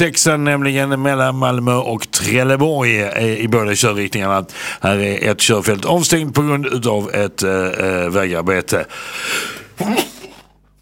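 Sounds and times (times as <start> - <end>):
speech: 0.0 - 10.2
hiss: 0.0 - 10.7
person sneezing: 9.4 - 10.6.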